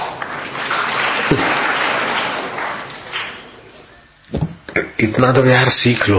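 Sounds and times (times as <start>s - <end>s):
crowd applauding: 0.0s - 3.8s
heavy thumps: 4.3s - 4.8s
speech: 5.0s - 6.1s.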